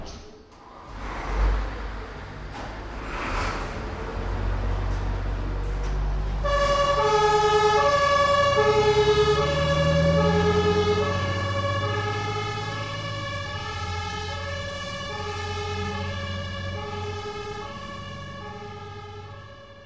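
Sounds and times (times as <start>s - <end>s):
heavy fire engine truck engine rumbling: 0.6s - 19.8s
fire engine two-tone siren wailing on the way to a fire: 5.4s - 19.8s.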